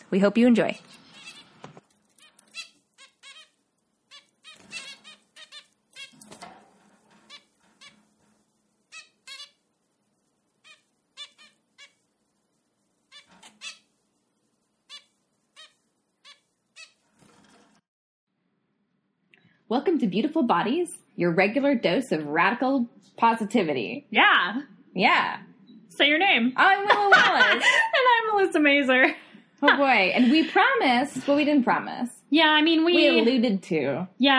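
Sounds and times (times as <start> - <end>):
speech: 0.1 - 1.0, 20.0 - 34.3
finches chirping: 0.6 - 6.4, 8.9 - 9.6, 10.6 - 12.0, 13.0 - 13.9
laughter: 26.8 - 28.2.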